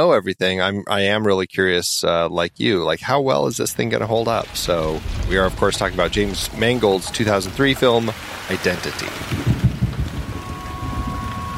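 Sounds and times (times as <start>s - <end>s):
speech: 0.0s - 9.5s
steady rain hissing: 3.5s - 11.5s
low thunder rumbling: 3.9s - 8.5s, 9.1s - 11.5s.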